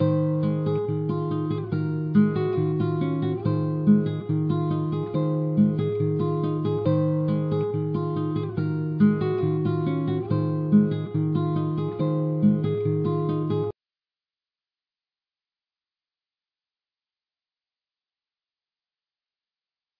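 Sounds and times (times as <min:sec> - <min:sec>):
nylon guitar loop: 0:00.0 - 0:13.7.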